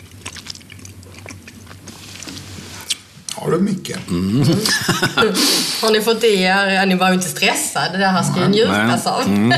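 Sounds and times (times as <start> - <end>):
chewing and biting into sweet chocolate: 0.0 - 3.0
speech: 3.4 - 9.5
laughter: 4.4 - 5.4.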